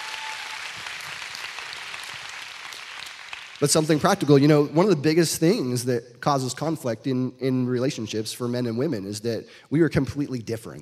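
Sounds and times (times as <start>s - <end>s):
crowd applauding: 0.0s - 4.2s
speech: 3.6s - 10.8s.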